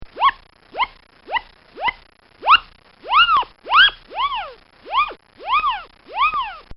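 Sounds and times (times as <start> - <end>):
comical whoopie sounds: 1.8 - 6.7.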